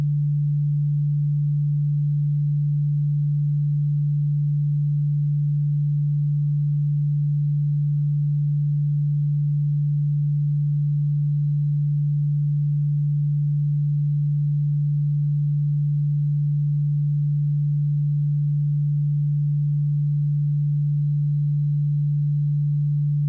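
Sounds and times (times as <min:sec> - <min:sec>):
146 Hz pure tone in left ear: 0:00.0 - 0:23.2.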